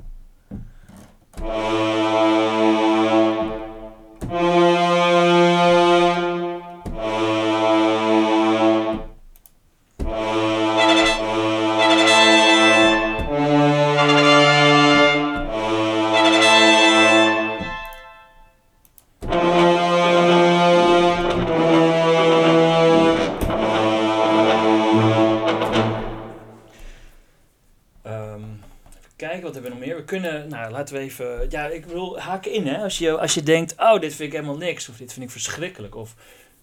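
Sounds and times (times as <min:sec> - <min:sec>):
speech: 0:01.4 - 0:01.7, 0:30.6 - 0:36.4
cinematic braam blasts from low brass: 0:01.4 - 0:09.2, 0:10.1 - 0:18.4, 0:19.3 - 0:27.0.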